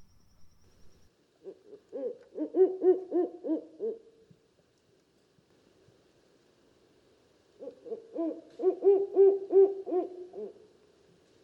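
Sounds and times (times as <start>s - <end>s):
Mexican barred owl hooting: 1.4s - 4.0s, 7.6s - 10.6s.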